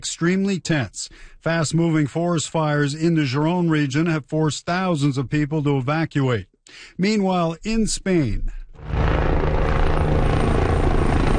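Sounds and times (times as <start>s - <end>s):
speech: 0.0s - 9.1s
firefighting helicopter engine and rotor while water-bombing wildfire flames in central Spain: 8.8s - 11.3s.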